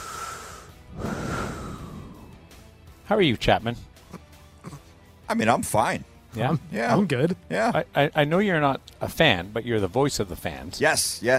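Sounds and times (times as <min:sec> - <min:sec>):
deep airy rushing breath intake: 0:00.0 - 0:02.6
speech: 0:03.1 - 0:03.9, 0:05.3 - 0:11.3.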